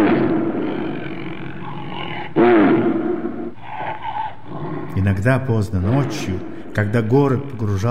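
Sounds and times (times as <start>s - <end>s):
deep gloomy roar of a caged animal: 0.0s - 5.2s
low grunting growls of a caged animal: 0.0s - 6.4s
speech: 5.2s - 7.8s.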